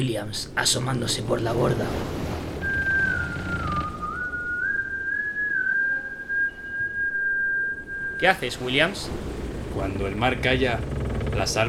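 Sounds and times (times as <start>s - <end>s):
speech: 0.0s - 2.2s, 8.2s - 11.6s
man whistling aboard a becalmed sailing ship: 2.6s - 8.2s.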